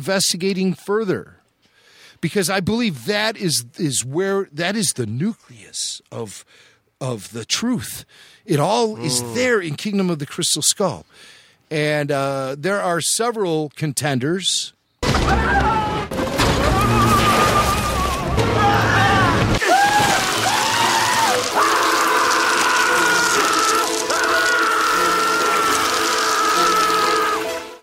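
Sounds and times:
speech: 0.0 - 1.4, 2.2 - 15.9
booming action film soundtrack: 15.0 - 19.6, 20.2 - 27.8
people screaming in a film clip: 15.0 - 27.8
crashes in an action soundtrack: 16.1 - 27.6.

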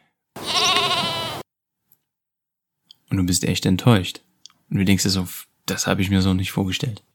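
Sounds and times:
moose call bleat: 0.4 - 1.4
speech: 3.1 - 7.1.

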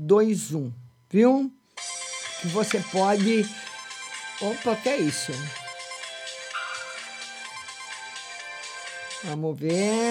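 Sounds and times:
speech: 0.1 - 1.6, 2.4 - 3.6, 4.4 - 5.6, 9.2 - 10.0
telephone ringtone with bright repeating electronic melody: 1.8 - 8.8.

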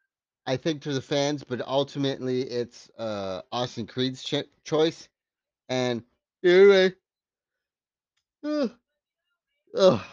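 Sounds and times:
speech: 0.5 - 5.1, 5.7 - 7.0, 8.4 - 8.8, 9.7 - 10.1
person yawning mid-conversation: 8.4 - 8.7, 9.8 - 10.1.

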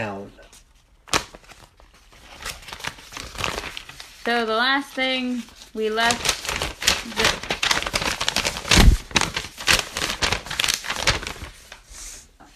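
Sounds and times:
loud paper crumpling and rustling: 0.4 - 11.9
speech: 4.2 - 7.4.

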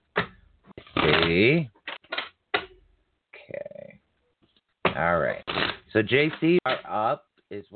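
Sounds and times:
tarot cards being shuffled for a reading: 0.8 - 2.3, 5.4 - 6.8
speech: 1.0 - 1.8, 5.0 - 5.4, 6.0 - 7.7.

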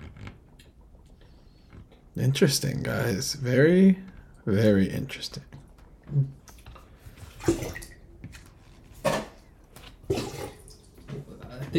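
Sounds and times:
speech: 2.2 - 6.4
liquid pouring in short splashy bursts: 6.8 - 11.1.

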